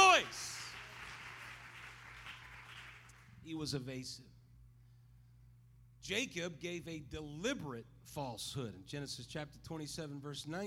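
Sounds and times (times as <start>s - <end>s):
audience clapping hands: 0.0s - 3.3s
low electrical hum: 0.0s - 10.6s
speech: 3.4s - 4.4s, 6.1s - 10.6s.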